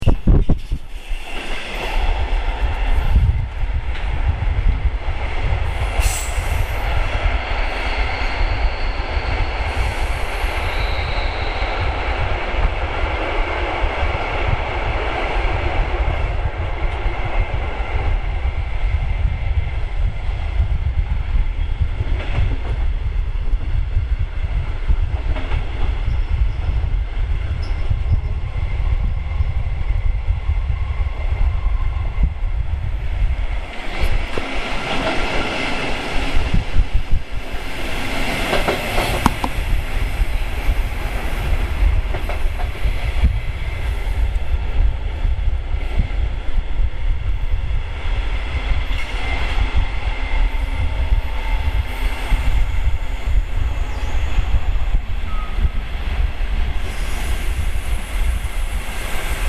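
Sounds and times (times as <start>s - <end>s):
train in Germany: 0.0s - 59.4s.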